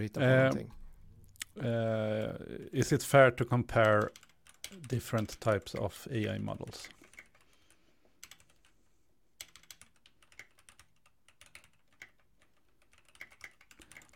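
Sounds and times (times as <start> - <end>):
speech: 0.0 - 0.8, 1.6 - 7.0
typing on a computer keyboard: 3.5 - 8.7, 9.4 - 14.1.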